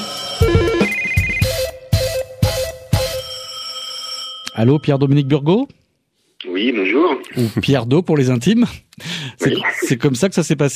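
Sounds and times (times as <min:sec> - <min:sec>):
melodic phone ringtone playing a repeating electronic tune: 0:00.2 - 0:02.0, 0:02.9 - 0:05.0
speech: 0:04.6 - 0:05.8, 0:06.4 - 0:10.7.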